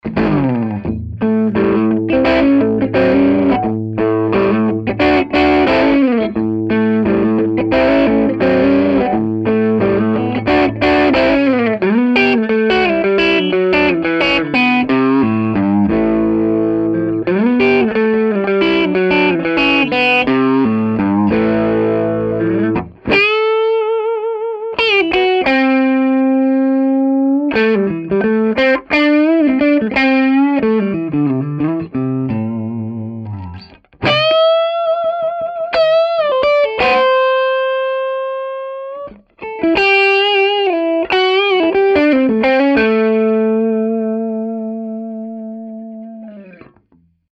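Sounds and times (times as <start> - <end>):
crunch electric guitar on neck and bridge pickups: 0.0 - 47.3.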